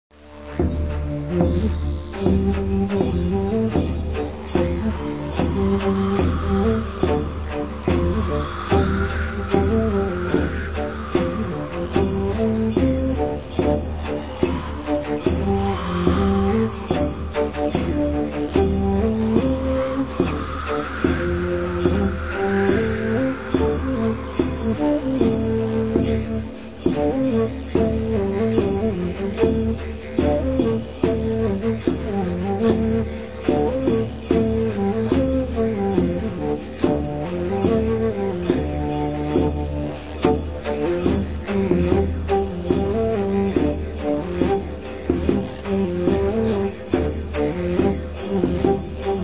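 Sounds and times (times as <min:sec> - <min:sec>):
wind: 0:00.1 - 0:49.2.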